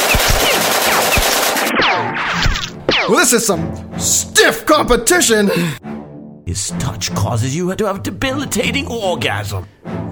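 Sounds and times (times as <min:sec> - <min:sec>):
machine-gun fire as henchmen open fire on a target: 0:00.0 - 0:02.2
speech: 0:03.1 - 0:05.9, 0:06.5 - 0:10.0.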